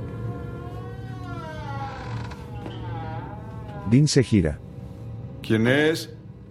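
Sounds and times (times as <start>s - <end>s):
storeroom door slowly creaking open: 0.0s - 4.1s
low steady rumble: 0.0s - 6.4s
speech: 3.9s - 4.6s, 5.5s - 6.2s.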